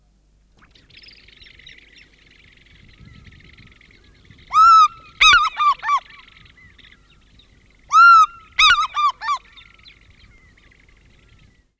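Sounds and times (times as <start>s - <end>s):
African Fish-Eagle Haliaeetus vocifer calling: 4.5s - 6.3s, 7.9s - 9.6s.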